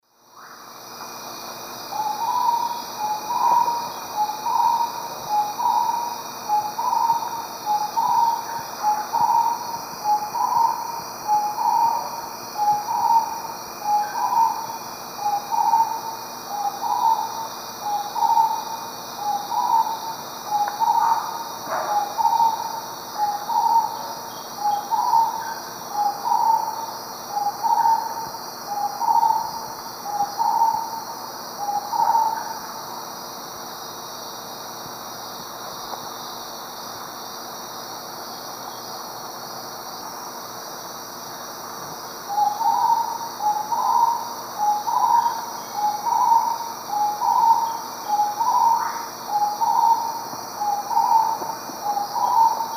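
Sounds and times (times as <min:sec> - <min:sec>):
Odontophorus stellatus song: 0:01.9 - 0:32.9, 0:42.2 - 0:52.7.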